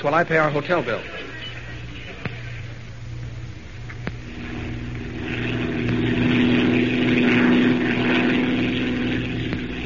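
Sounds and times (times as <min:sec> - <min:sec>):
speech: 0:00.0 - 0:01.2
propeller airplane droning in flight: 0:00.0 - 0:09.8.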